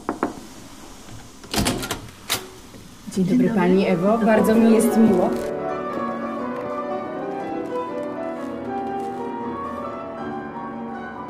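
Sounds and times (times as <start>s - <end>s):
speech: 3.2s - 5.5s
classical piano music with sustained chords: 3.6s - 11.2s.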